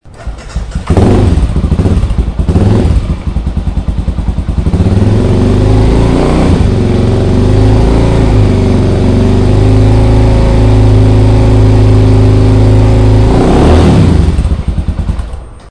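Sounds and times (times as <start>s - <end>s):
Arrow F650ST exhaust: 0.1s - 15.7s.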